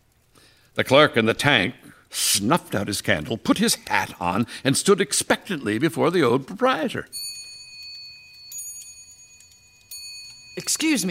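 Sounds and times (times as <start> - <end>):
speech: 0.8 - 7.2, 10.7 - 11.0
old wall clock in a shop chiming the hour: 7.1 - 11.0.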